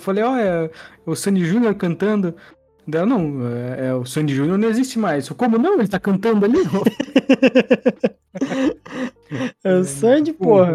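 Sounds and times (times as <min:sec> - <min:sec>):
speech: 0:00.0 - 0:10.7
laughter: 0:06.6 - 0:09.5
person coughing in a loud coughing fit: 0:08.4 - 0:09.5.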